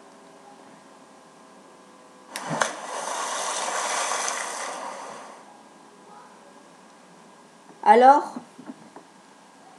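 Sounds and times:
person diving into a swimming pool: 2.3 - 5.4
speech: 7.9 - 8.4.

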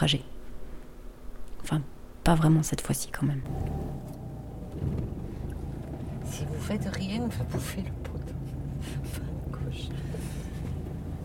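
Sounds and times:
speech: 0.0 - 0.4, 1.6 - 4.2, 4.8 - 5.2, 6.3 - 10.2
vehicle interior road and engine drone in motion: 3.4 - 11.2.

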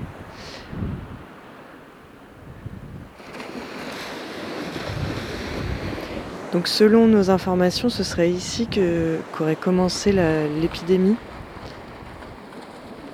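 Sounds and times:
strong wind buffeting the microphone on a beach: 0.0 - 13.1
surf breaking on a beach: 3.1 - 13.1
speech: 6.5 - 11.3.

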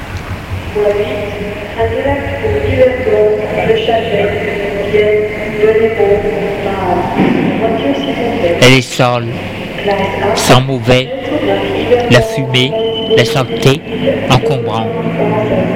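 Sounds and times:
murmuring voices in a crowded railway station: 0.6 - 15.7
speech: 0.7 - 15.7.

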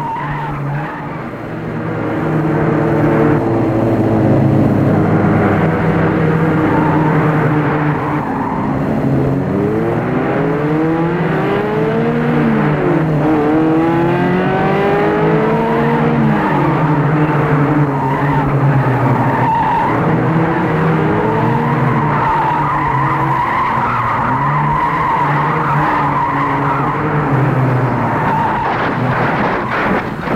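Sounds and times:
tires squealing and skidding on a road slippery from rain: 0.0 - 1.4, 6.2 - 9.2, 16.2 - 30.3
car engine revving: 0.0 - 30.3.

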